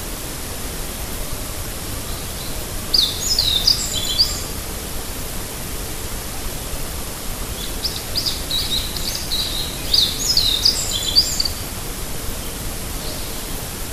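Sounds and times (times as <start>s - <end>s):
constant soft hiss: 0.0s - 13.9s
meadow bunting singing: 2.9s - 4.5s, 7.6s - 11.6s.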